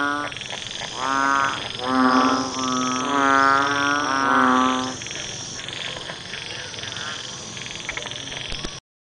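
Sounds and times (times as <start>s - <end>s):
banded bullfrog deep nasal croaks: 0.0s - 8.8s
steady high hum: 0.0s - 8.8s.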